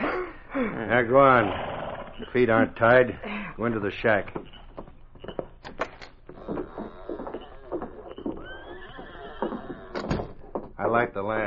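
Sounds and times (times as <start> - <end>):
speech: 0.6 - 4.9, 10.8 - 11.4
horse whinnying: 1.2 - 2.5, 6.3 - 10.4
horse hooves clopping: 2.0 - 11.4.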